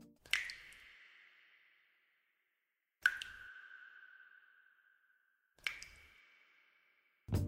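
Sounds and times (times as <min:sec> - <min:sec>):
water drops with long ringing echo: 0:00.2 - 0:02.0, 0:03.0 - 0:07.1.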